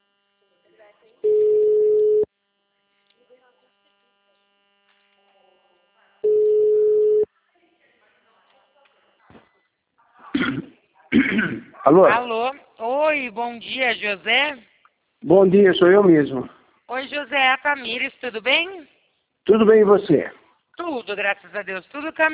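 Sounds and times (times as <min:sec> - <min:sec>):
outgoing telephone call ringback tones: 0:01.2 - 0:02.3, 0:06.2 - 0:07.3
speech: 0:11.9 - 0:22.3.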